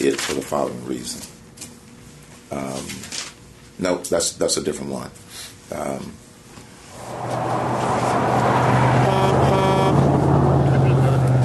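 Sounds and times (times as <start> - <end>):
speech: 0.0 - 1.4, 2.5 - 3.2, 3.8 - 6.3
large truck driving past: 6.9 - 11.4
truck horn honks: 8.8 - 10.1.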